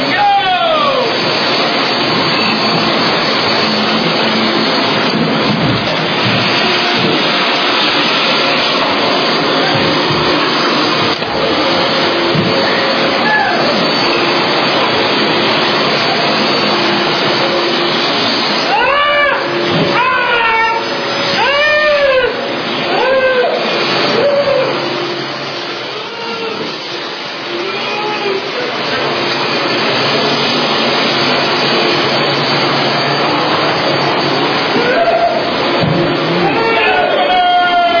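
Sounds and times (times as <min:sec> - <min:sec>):
vacuum cleaners running in a vacuum-cleaning contest: 0:00.0 - 0:37.9
faint voices: 0:05.8 - 0:31.0, 0:33.1 - 0:37.9.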